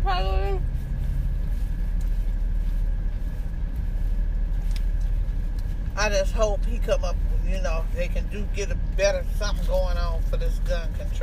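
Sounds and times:
new car engine running: 0:00.0 - 0:11.2
speech: 0:06.0 - 0:11.2.

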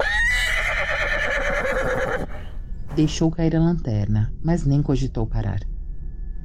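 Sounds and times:
horse neighing loudly with a long shrill whinny: 0:00.0 - 0:02.5
speech: 0:03.0 - 0:05.7.

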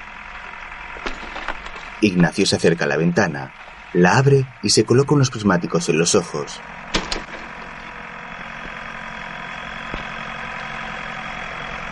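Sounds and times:
tractor engine droning while plowing a field: 0:00.0 - 0:11.9
speech: 0:02.0 - 0:06.8
sharp knocks: 0:06.9 - 0:07.8.

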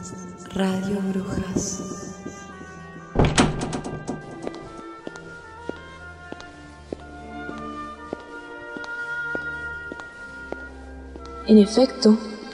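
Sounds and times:
speech: 0:00.0 - 0:02.5, 0:11.5 - 0:12.3
suitcases set down on the floor at home: 0:01.6 - 0:05.3
door shutting: 0:03.1 - 0:04.9.

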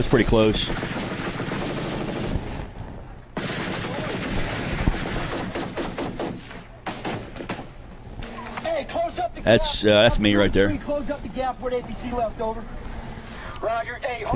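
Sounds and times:
speech: 0:00.0 - 0:01.2, 0:09.4 - 0:12.8, 0:13.6 - 0:14.3
gunfire from shooters firing across into a cornfield: 0:00.0 - 0:02.8, 0:03.4 - 0:07.7
steady rumble: 0:00.0 - 0:14.3.

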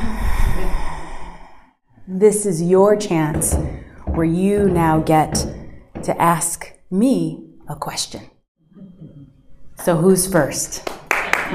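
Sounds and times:
deep audible breath in and out: 0:00.0 - 0:01.8
speech: 0:02.1 - 0:08.3, 0:09.8 - 0:11.5.

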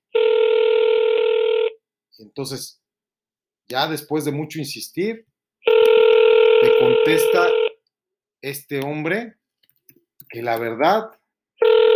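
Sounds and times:
electronic telephone ringing: 0:00.1 - 0:01.8, 0:05.6 - 0:07.8, 0:11.6 - 0:11.9
speech: 0:02.2 - 0:02.8, 0:03.7 - 0:05.3, 0:06.7 - 0:07.6, 0:08.4 - 0:09.4, 0:10.3 - 0:11.8.

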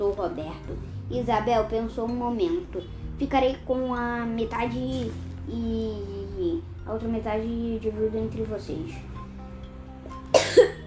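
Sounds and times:
speech: 0:00.0 - 0:09.1
person coughing harshly: 0:10.3 - 0:10.8.

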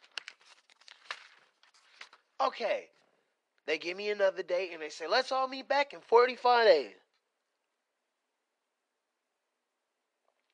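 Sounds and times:
papers being shuffled: 0:00.0 - 0:02.4
speech: 0:02.4 - 0:03.0, 0:03.7 - 0:07.0.

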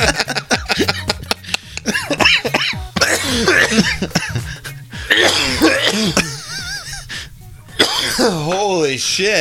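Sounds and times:
laughter: 0:00.0 - 0:04.8, 0:05.6 - 0:07.3
harsh coughing fit with throat-clearing: 0:01.8 - 0:06.7, 0:07.8 - 0:08.6
speech: 0:09.2 - 0:09.3.

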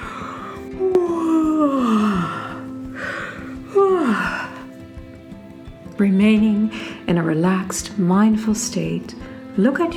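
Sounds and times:
deep yawns: 0:00.0 - 0:04.7
speech: 0:06.0 - 0:09.9.

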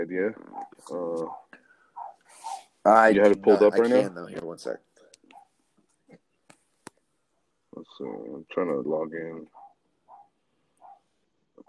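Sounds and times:
speech: 0:00.0 - 0:01.4, 0:02.8 - 0:04.9, 0:07.8 - 0:09.6
neighbor's dog barking, short, muffled and faint: 0:00.4 - 0:02.7, 0:09.5 - 0:11.6.

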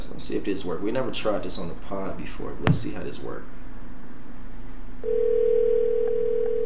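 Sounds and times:
low hum: 0:00.0 - 0:06.6
speech: 0:00.2 - 0:03.6, 0:05.0 - 0:06.1
steady loud telephone tone: 0:05.0 - 0:06.6.

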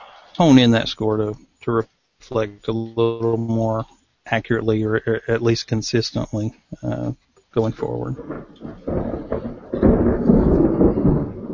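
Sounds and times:
speech: 0:00.4 - 0:09.0
deep rolling thunder from an approaching thunderstorm: 0:07.7 - 0:11.5.

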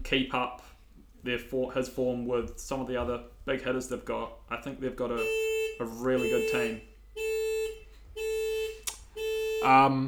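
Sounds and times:
speech: 0:00.1 - 0:07.3, 0:09.6 - 0:10.0
car alarm: 0:05.2 - 0:10.0.

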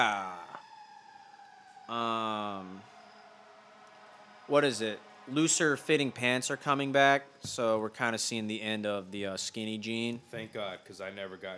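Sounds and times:
speech: 0:00.0 - 0:00.2, 0:04.5 - 0:11.5
emergency vehicle siren wailing outside: 0:00.0 - 0:11.5
loud brassy horn blast: 0:01.9 - 0:07.7.

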